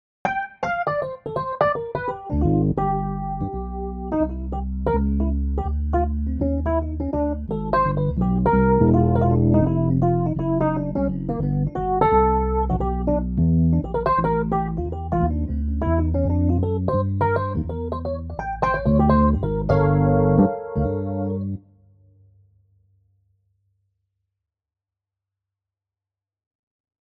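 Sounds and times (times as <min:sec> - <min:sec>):
Rhodes electric piano: 0:00.2 - 0:21.6.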